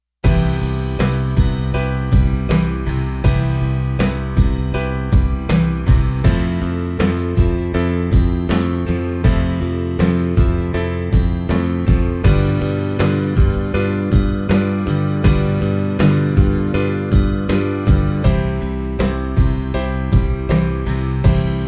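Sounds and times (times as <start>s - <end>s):
Cmaj7 Fmaj7 G7 C chord progression: 0.2s - 21.6s.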